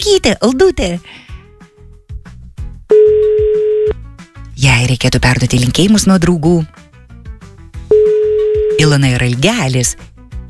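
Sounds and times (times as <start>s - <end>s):
speech: 0.0s - 1.3s, 4.6s - 6.8s, 8.8s - 10.1s
telephone tones as a call is placed: 2.9s - 4.0s, 7.9s - 8.9s.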